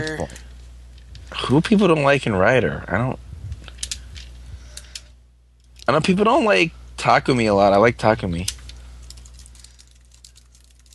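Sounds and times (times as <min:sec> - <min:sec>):
steady low hum: 0:00.0 - 0:10.9
speech: 0:01.5 - 0:03.2, 0:05.9 - 0:08.6
typing on a computer keyboard: 0:09.0 - 0:10.9.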